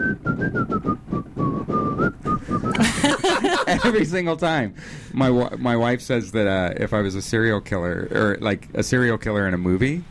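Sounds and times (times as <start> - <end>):
man whistling a short melodic tune: 0.0 - 2.8
laughter: 2.6 - 4.1
speech: 3.7 - 10.0.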